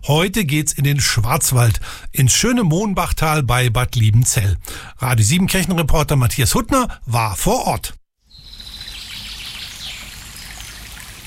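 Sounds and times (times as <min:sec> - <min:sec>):
speech: 0:00.0 - 0:08.0
Mohnbach stream babbling in the Mohnbachtal Black Forest Germany: 0:08.6 - 0:11.2.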